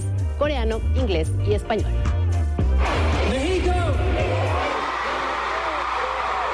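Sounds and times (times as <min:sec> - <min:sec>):
speech: 0:00.4 - 0:02.2
huge stadium concert crowd in Mexico screaming and cheering: 0:02.8 - 0:06.5.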